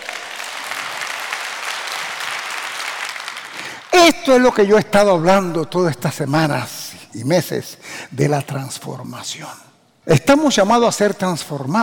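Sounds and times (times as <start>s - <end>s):
crowd applause: 0.0s - 3.9s
speech: 4.0s - 11.8s.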